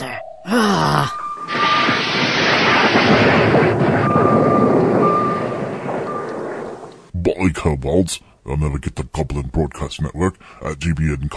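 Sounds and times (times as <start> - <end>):
torpedoes being launched with roaring rush: 1.4 - 7.1
speech: 7.6 - 11.3.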